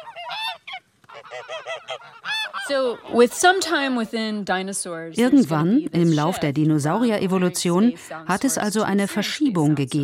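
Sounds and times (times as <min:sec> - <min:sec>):
geese honking: 0:00.0 - 0:04.1
speech: 0:01.4 - 0:10.0.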